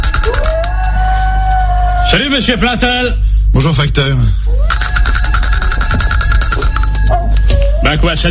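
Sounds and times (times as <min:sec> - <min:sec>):
doorbell ringing at a front door: 0:00.0 - 0:01.0, 0:04.7 - 0:08.0
speech: 0:02.1 - 0:05.2, 0:07.9 - 0:08.3.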